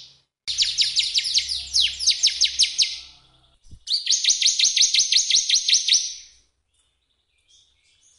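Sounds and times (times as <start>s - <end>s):
bar-winged prinia song: 0.5s - 6.3s.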